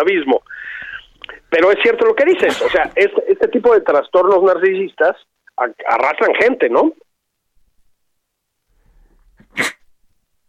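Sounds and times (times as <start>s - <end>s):
speech: 0.0s - 0.8s, 1.5s - 7.0s
person sneezing: 2.4s - 2.9s, 9.4s - 9.8s.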